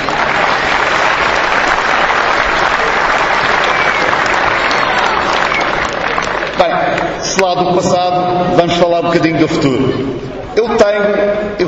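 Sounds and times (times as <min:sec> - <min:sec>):
large audience applauding: 0:00.0 - 0:07.2
speech: 0:07.4 - 0:11.6.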